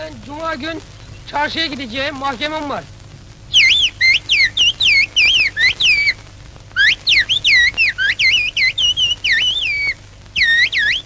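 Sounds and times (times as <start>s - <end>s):
person speaking a short phrase: 0.0s - 2.9s
whistled language phrase: 3.5s - 6.2s, 6.8s - 11.0s.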